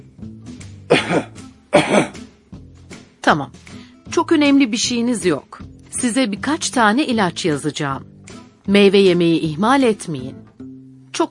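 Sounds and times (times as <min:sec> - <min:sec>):
patient coughing during medical examination: 0:00.9 - 0:02.2
speech: 0:01.1 - 0:02.2, 0:03.3 - 0:03.6, 0:04.2 - 0:08.1, 0:08.7 - 0:10.4.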